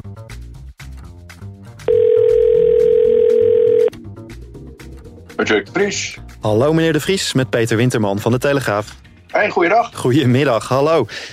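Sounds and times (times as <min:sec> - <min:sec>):
telephone dial tone of an outgoing call: 0:01.9 - 0:03.9
speech: 0:05.4 - 0:11.3.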